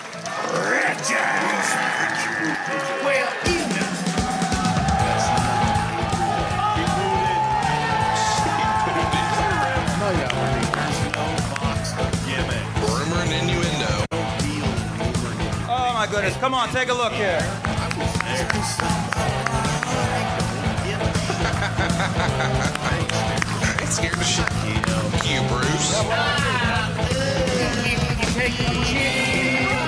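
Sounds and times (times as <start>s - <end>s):
live audience applauding comedians on stage: 0.0s - 28.1s
live audience cheering and yelling: 0.0s - 29.8s
whoops and shouts from crowd: 0.5s - 9.8s
laughter: 4.8s - 12.4s, 17.6s - 28.0s
speech: 16.4s - 17.7s, 23.9s - 29.4s.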